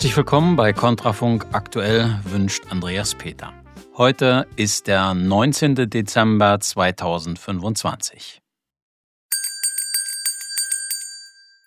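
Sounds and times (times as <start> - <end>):
speech: 0.0 - 8.4
bright high-pitched bell ringing: 9.3 - 11.6.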